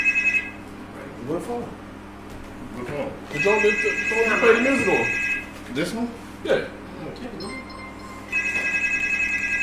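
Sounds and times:
phone ringing with trilling electronic tones: 0.0 - 0.6, 3.3 - 5.6, 7.4 - 9.6
people talking: 2.8 - 7.7.

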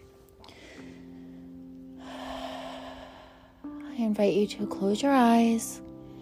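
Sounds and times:
deep breath in through the nose and out through the mouth: 0.4 - 3.8
speech: 4.0 - 5.9.

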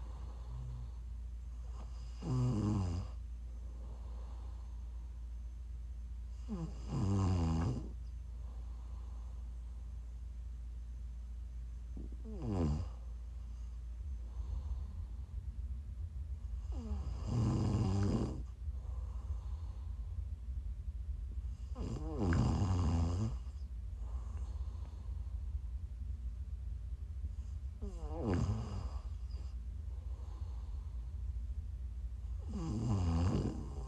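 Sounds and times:
steady low hum: 0.0 - 33.8
sleeping person snoring loudly with rattling snores: 1.8 - 3.2, 6.4 - 8.0, 12.0 - 13.0, 16.6 - 18.6, 21.6 - 24.9, 27.8 - 29.6, 32.4 - 33.8.

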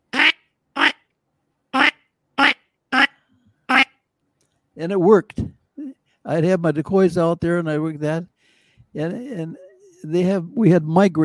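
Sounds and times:
person imitating redhead and canvasback diver duck calls: 0.0 - 1.1, 1.7 - 4.0
speech: 4.8 - 5.6, 6.3 - 8.3, 8.9 - 11.2.

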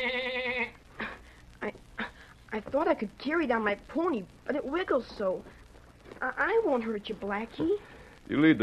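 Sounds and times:
lamb bleating: 0.0 - 0.8
speech: 2.6 - 5.6, 6.2 - 8.6.

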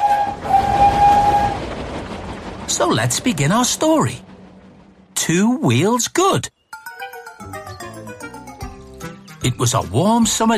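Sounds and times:
sustained high train whistle or horn tone: 0.0 - 1.7
streamlined silver train engine racing past with rumbling roar: 0.0 - 6.2
speech: 2.8 - 4.3, 5.3 - 6.6, 9.4 - 10.5.

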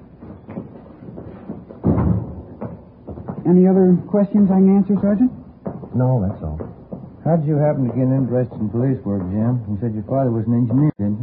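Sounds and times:
door knocks and rattles: 1.5 - 3.5
door shutting with a heavy thud: 1.8 - 2.8
speech: 3.5 - 5.4, 6.0 - 6.6, 7.2 - 10.9.

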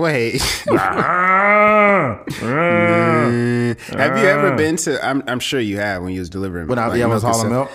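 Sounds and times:
speech: 0.0 - 7.7
cow mooing: 2.4 - 4.8.

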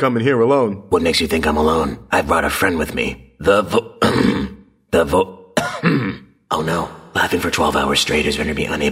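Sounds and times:
speech: 0.0 - 8.8
person clearing throat with rough gravelly rasp and harsh hacks: 4.0 - 4.7, 5.6 - 6.4.

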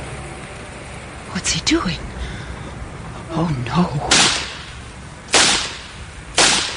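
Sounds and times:
speech: 1.5 - 2.1, 3.3 - 4.4
gunshots: 4.1 - 4.7, 5.3 - 6.7.

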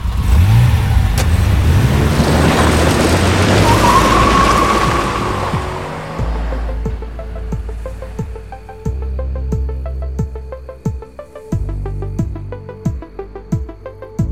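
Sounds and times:
car tyres squealing while skidding: 0.0 - 11.2
car engine speeding off: 0.0 - 14.2.

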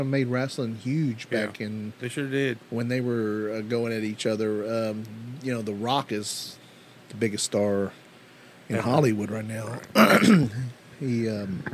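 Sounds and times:
speech: 0.0 - 8.0, 8.7 - 11.7
faint breath: 6.6 - 7.0, 8.3 - 8.7
cough into a microphone: 9.9 - 10.6.

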